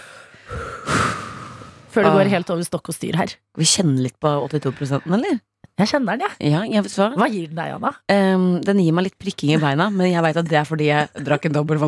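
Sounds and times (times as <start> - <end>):
slow calm breath in and out: 0.0 - 2.0
speech: 2.0 - 11.8.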